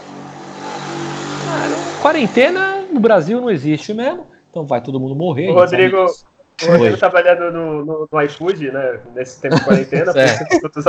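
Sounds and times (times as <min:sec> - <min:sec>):
motorcycle engine droning past outside: 0:00.0 - 0:02.9
speech: 0:02.0 - 0:10.8
laughter: 0:09.3 - 0:10.8.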